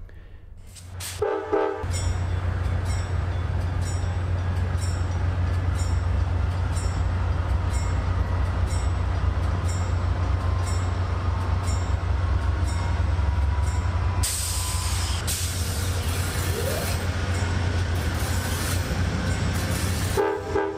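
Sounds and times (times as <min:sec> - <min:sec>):
rail noise: 0:00.0 - 0:20.7
diesel passenger train locomotive rumbling as it pulls away from the platform: 0:00.9 - 0:20.7
diesel train horn blast: 0:01.2 - 0:01.9, 0:20.0 - 0:20.7.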